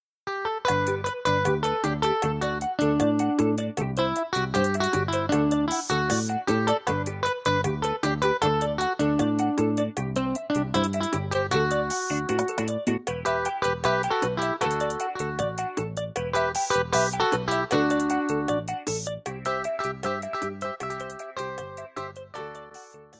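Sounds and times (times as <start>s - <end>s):
Latin bachata rhythm music: 0.8s - 22.9s.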